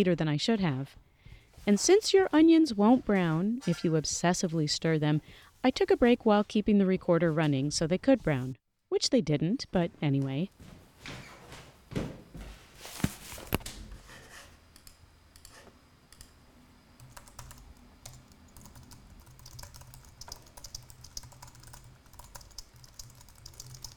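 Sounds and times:
speech: 0:00.0 - 0:11.2
typing on a computer keyboard: 0:17.0 - 0:23.9.

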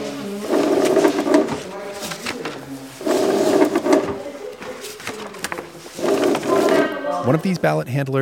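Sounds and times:
ballot tabulating machine clicks and rattles: 0:00.0 - 0:04.2, 0:04.8 - 0:06.8
ballot tabulating machine whirring: 0:00.0 - 0:07.6
speech: 0:07.3 - 0:08.2.

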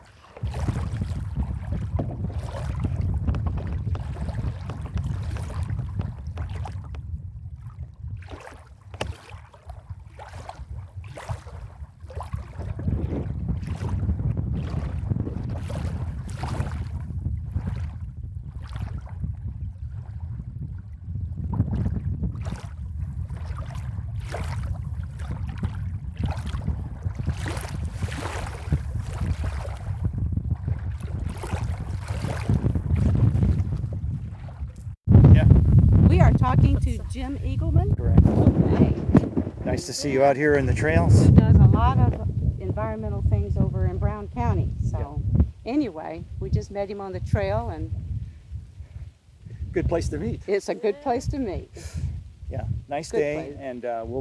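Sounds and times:
beach water splashing around bare feet: 0:00.0 - 0:19.2, 0:21.6 - 0:35.1
low rumble of moving water: 0:00.0 - 0:54.1
wind: 0:00.0 - 0:54.1
speech: 0:39.8 - 0:42.0, 0:44.5 - 0:48.0, 0:49.8 - 0:52.0, 0:52.9 - 0:54.1.

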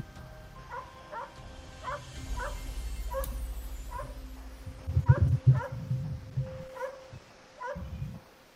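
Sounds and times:
dog giving short high barks: 0:00.7 - 0:03.3, 0:03.9 - 0:04.2, 0:05.0 - 0:05.9, 0:06.7 - 0:07.9
low rumbling background: 0:01.4 - 0:07.2.

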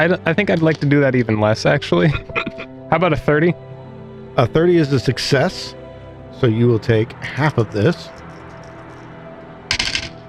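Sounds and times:
speech: 0:00.0 - 0:03.7, 0:04.4 - 0:05.8, 0:06.4 - 0:08.2
dice rattling across a hard table during a tabletop role-playing game: 0:09.7 - 0:10.2.

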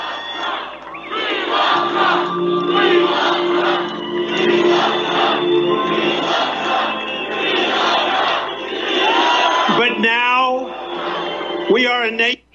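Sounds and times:
large crowd chanting in unison at a rally: 0:00.0 - 0:12.0.

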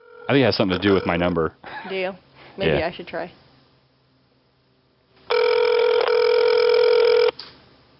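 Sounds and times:
phone ringback tone of unanswered outgoing call: 0:00.0 - 0:01.3, 0:05.3 - 0:07.3
speech: 0:00.3 - 0:03.4.

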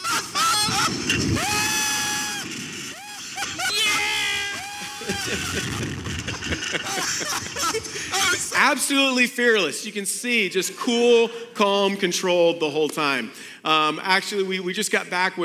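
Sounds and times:
people screaming on a slingshot amusement ride: 0:00.0 - 0:06.0
laughter: 0:00.0 - 0:08.8
speech: 0:05.3 - 0:15.4.

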